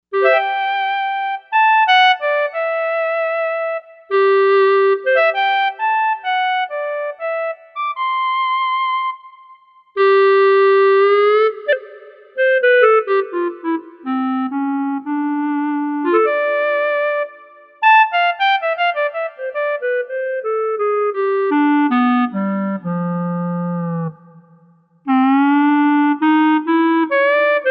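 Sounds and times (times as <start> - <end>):
clarinet sound from a synthesizer: 0.1 - 27.6.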